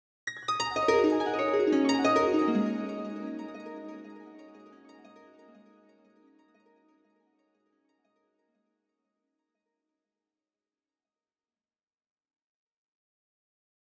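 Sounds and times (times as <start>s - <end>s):
dream harp: 0.3s - 5.9s.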